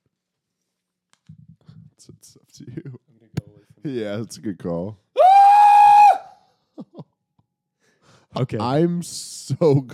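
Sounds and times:
speech: 0:02.0 - 0:03.1, 0:03.8 - 0:05.0, 0:08.4 - 0:09.9
man screaming: 0:05.2 - 0:06.4
laughter: 0:06.8 - 0:07.2.

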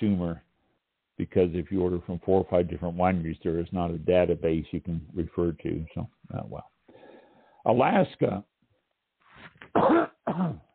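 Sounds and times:
speech: 0:00.0 - 0:00.5, 0:01.2 - 0:06.7, 0:07.6 - 0:08.5, 0:09.5 - 0:10.7
harsh throaty coughing: 0:09.7 - 0:10.7.

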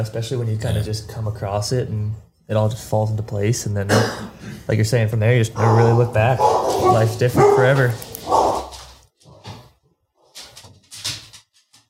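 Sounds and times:
speech: 0:00.0 - 0:08.1
guard dogs barking: 0:05.6 - 0:08.9.

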